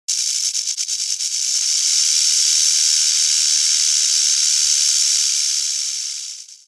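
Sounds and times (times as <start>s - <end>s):
rattlesnake tail rattle: 0.1s - 6.6s.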